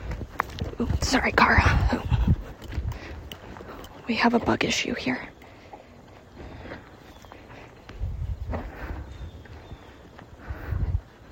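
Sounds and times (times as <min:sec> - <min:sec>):
hoofbeats of a horse walking under a rider on dirt: 0:00.0 - 0:11.2
speech: 0:00.8 - 0:02.1, 0:04.1 - 0:05.3.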